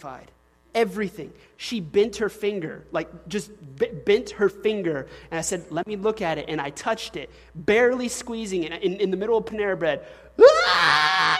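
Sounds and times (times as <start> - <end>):
speech: 0.0 - 11.3
voice imitating a high piercing scream of a girl: 10.4 - 11.3.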